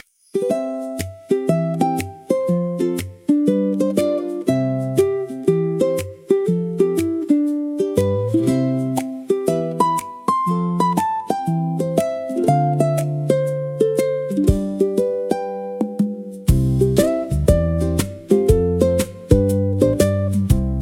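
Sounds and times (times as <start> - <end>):
ukulele music: 0.0 - 20.8.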